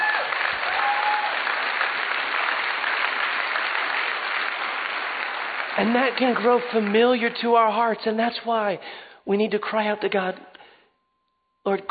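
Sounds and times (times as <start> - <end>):
audience applauding: 0.0 - 7.4
speech: 5.8 - 10.5, 11.6 - 11.8.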